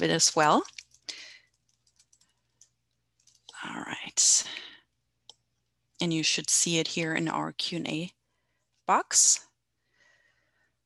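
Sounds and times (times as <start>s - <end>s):
speech: 0.0s - 1.2s, 6.0s - 8.2s, 8.9s - 9.5s
typing on a computer keyboard: 0.4s - 3.7s.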